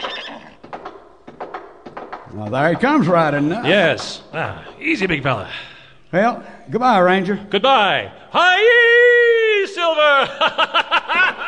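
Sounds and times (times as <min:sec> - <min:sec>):
male horse neighing: 0:00.0 - 0:00.6
speech: 0:02.3 - 0:08.9, 0:09.8 - 0:10.9
laughter: 0:10.1 - 0:11.4.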